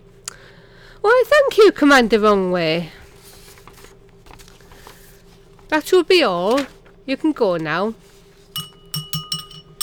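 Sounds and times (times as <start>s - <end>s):
speech: 1.0s - 3.0s, 5.7s - 8.0s
champagne glasses clinking in a toast: 8.6s - 9.8s.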